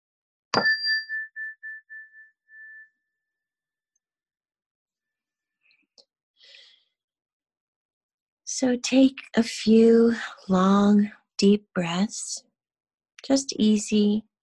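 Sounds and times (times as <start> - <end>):
speech: 0.5 - 0.8, 8.6 - 12.5, 13.2 - 14.3
meditation chime ringing: 0.6 - 3.1.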